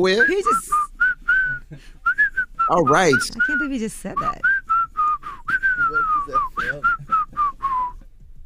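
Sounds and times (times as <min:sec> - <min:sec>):
speech: 0:00.0 - 0:00.9, 0:02.7 - 0:04.5
person whistling melodic notes: 0:00.0 - 0:08.0.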